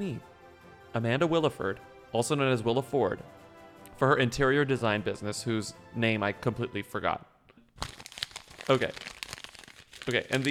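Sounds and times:
speech: 0:00.0 - 0:00.3, 0:00.9 - 0:03.4, 0:04.0 - 0:07.9, 0:08.7 - 0:09.1, 0:10.1 - 0:10.5
crumpled paper sheet being smoothed out: 0:07.8 - 0:10.5.

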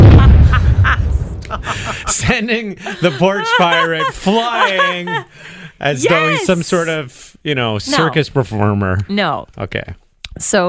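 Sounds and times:
cannon firing: 0:00.0 - 0:02.0
laughter: 0:00.0 - 0:06.9
speech: 0:02.2 - 0:10.6.

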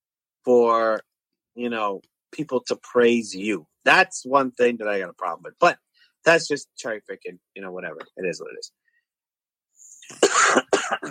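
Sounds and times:
speech: 0:00.4 - 0:08.8, 0:10.1 - 0:11.0
person coughing: 0:10.0 - 0:11.0.

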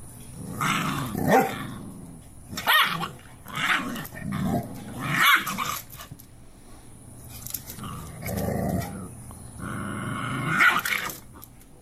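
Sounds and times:
large mother Cane Corso dog growling and snarling while disciplining her puppy: 0:00.4 - 0:06.1, 0:07.7 - 0:11.4
Cane Corso dog barking: 0:05.2 - 0:05.6.

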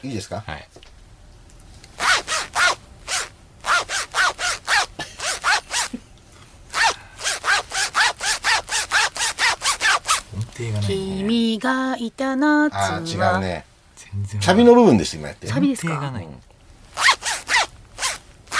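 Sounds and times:
speech: 0:00.0 - 0:00.8, 0:11.6 - 0:16.5
zipper pulled rhythmically to play a tune: 0:02.0 - 0:06.0, 0:06.7 - 0:10.3, 0:17.0 - 0:18.5.

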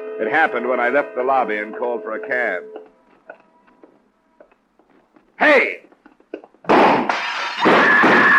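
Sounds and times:
speech: 0:00.2 - 0:02.8, 0:05.4 - 0:05.8
pistol gunshots fired out of the window of a double-parked car: 0:06.7 - 0:08.2.

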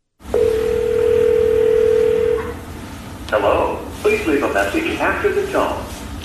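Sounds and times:
steady electronic telephone line tone: 0:00.3 - 0:02.6
speech: 0:03.3 - 0:05.8.

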